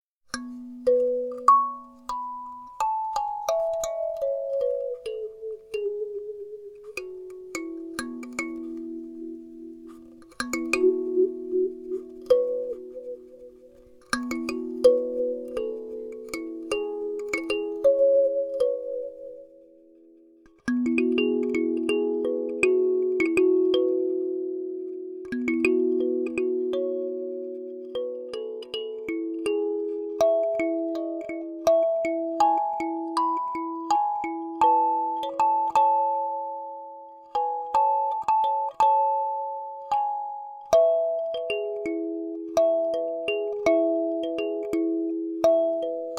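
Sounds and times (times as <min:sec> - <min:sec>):
kalimba: 0:00.3 - 0:46.1.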